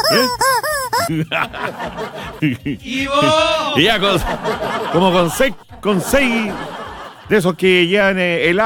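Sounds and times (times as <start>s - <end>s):
rubber toy chicken squawking as its neck is pulled: 0.0s - 1.2s
speech: 0.1s - 0.4s, 1.1s - 8.6s
laughter: 1.0s - 7.7s.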